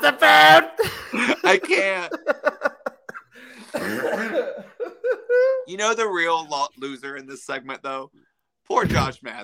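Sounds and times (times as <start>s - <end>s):
speech: 0.0s - 2.6s, 5.8s - 9.4s
laughter: 0.7s - 5.7s
coughing fit with raspy hacking: 3.6s - 5.6s.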